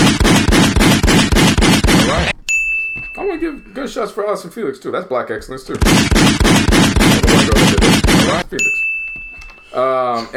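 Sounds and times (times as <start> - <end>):
rapid burst of loud gunshots: 0.0 - 2.4, 5.7 - 8.5
speech: 3.4 - 6.6, 8.3 - 8.8, 9.8 - 10.3.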